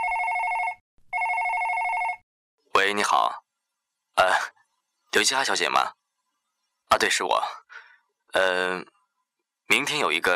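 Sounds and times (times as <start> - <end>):
electronic telephone ring of an incoming call: 0.0 - 2.2
speech: 2.8 - 3.4, 4.2 - 4.6, 5.2 - 6.0, 6.9 - 7.7, 8.3 - 8.9, 9.7 - 10.3.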